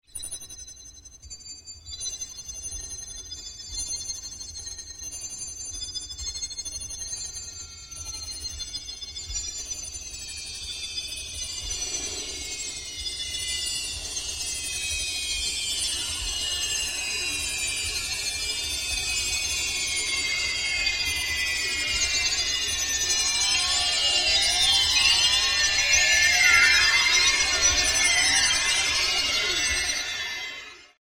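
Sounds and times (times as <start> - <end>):
multi-pitched high frequency electronic sci-fi transformation sequence: 11.2 - 31.0.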